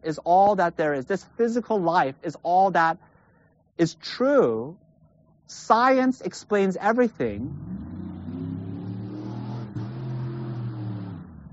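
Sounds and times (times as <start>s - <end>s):
speech: 0.0s - 3.1s, 3.8s - 4.8s, 5.5s - 7.8s
car passing by outside with engine drone: 7.5s - 11.5s.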